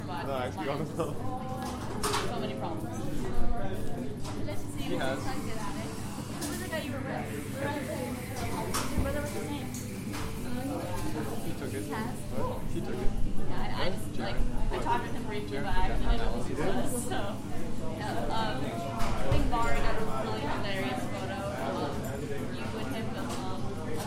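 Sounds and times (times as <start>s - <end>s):
crowded cafe ambience: 0.0s - 24.0s.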